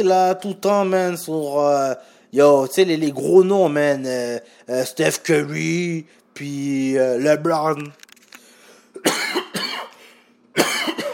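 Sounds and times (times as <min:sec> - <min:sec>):
speech: 0:00.0 - 0:08.0
person clearing throat: 0:09.0 - 0:10.0, 0:10.6 - 0:11.1.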